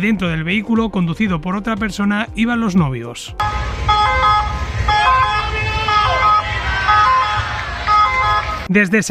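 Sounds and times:
speech: 0:00.0 - 0:03.8, 0:08.7 - 0:09.0
street noise rumble: 0:03.3 - 0:08.8
ambulance siren wailing in a two-tone pattern: 0:03.4 - 0:08.7.

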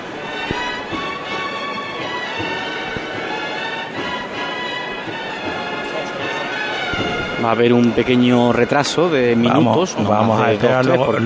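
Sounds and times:
crowd murmur: 0:00.0 - 0:11.2
distant procession band accompanying a float: 0:00.0 - 0:11.2
scattered taps: 0:00.3 - 0:09.0
speech: 0:07.4 - 0:11.2.

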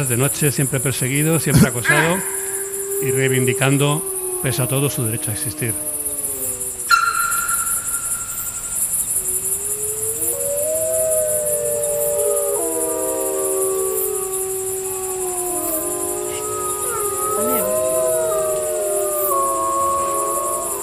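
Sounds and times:
speech: 0:00.0 - 0:02.4, 0:03.0 - 0:06.0
crickets droning at night: 0:00.0 - 0:20.8
several wolves howling in chorus at night: 0:00.8 - 0:20.8.

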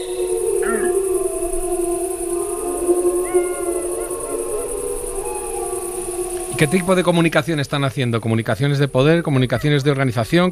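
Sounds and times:
several adult wolves howling in deep tones: 0:00.0 - 0:08.0
steady hiss: 0:00.0 - 0:10.5
speech: 0:06.6 - 0:10.5.

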